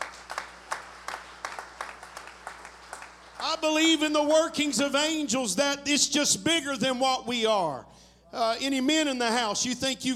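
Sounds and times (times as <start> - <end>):
group clapping in a steady rhythmic beat: 0.0 - 3.7
speech: 3.4 - 10.1.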